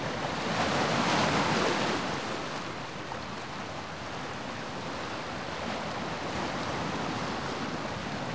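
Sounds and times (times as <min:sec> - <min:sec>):
wide ocean water: 0:00.0 - 0:08.3.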